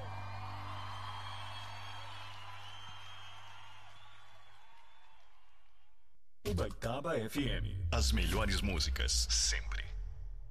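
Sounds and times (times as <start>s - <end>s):
crowd applauding and cheering with scattered whoops: 0.0s - 6.0s
speech: 6.5s - 9.9s.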